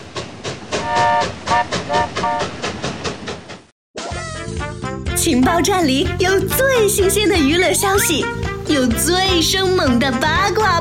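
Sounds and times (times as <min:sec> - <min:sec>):
train clattering arriving at a station: 0:00.0 - 0:03.7
speech: 0:01.2 - 0:02.6, 0:05.2 - 0:10.8.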